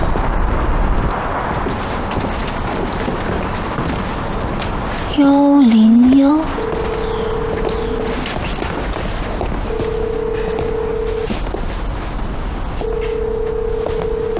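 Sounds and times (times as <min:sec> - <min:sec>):
constant rushing wind-like rumble: 0:00.0 - 0:14.3
speech: 0:05.2 - 0:06.6
ringback tone of a phone call that does not get through: 0:06.2 - 0:08.3, 0:09.6 - 0:11.5, 0:12.8 - 0:14.3.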